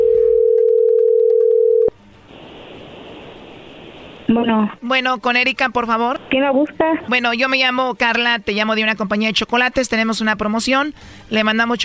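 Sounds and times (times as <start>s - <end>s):
telephone line tone as a call comes in: 0.0s - 1.9s
speech: 4.3s - 11.8s.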